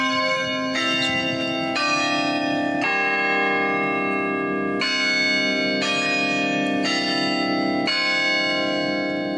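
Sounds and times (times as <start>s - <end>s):
big bells of a 57-bell university bell tower ringing: 0.0s - 9.3s.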